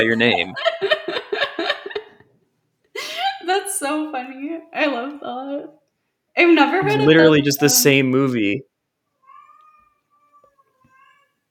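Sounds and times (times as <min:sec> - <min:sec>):
speech: 0:00.0 - 0:00.9, 0:03.8 - 0:05.8, 0:06.4 - 0:08.7
laughter: 0:00.0 - 0:02.2, 0:06.7 - 0:08.3
faint cat meowing: 0:09.2 - 0:11.4.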